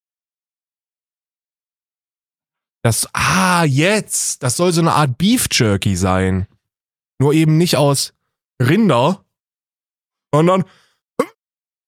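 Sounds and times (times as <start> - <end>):
speech: 2.8 - 6.5, 7.2 - 9.2, 10.3 - 10.8
single short sharp sneeze: 11.2 - 11.4.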